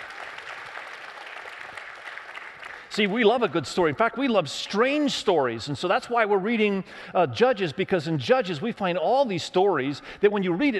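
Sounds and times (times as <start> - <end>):
church congregation applauding: 0.0 - 3.6
speech: 3.0 - 10.7.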